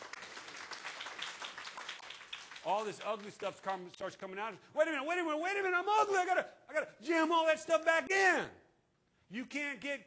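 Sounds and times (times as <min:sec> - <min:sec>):
audience applauding: 0:00.0 - 0:03.7
speech: 0:02.6 - 0:08.6, 0:09.3 - 0:10.0.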